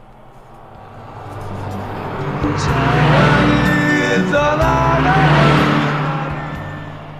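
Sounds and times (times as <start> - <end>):
car passing by: 0.0 - 7.1
song with steady beats and melodic tones playing from a car: 1.5 - 7.0.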